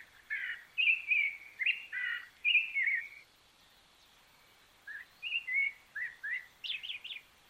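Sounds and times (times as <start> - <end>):
rufous-bellied thrush singing mellow whistled phrases: 0.3 - 3.2, 4.8 - 7.2.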